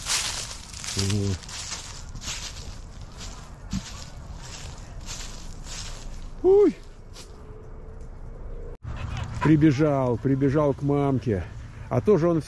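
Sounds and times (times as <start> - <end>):
dry rustling and crunching underfoot while walking: 0.0 - 7.4
speech: 1.0 - 1.6, 9.5 - 12.4.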